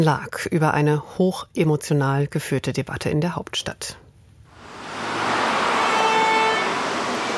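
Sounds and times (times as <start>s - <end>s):
speech: 0.0s - 4.0s
busy road traffic on a four-lane main road in Berlin-Reinickendorf: 4.5s - 7.3s
car horn honking: 4.7s - 7.3s.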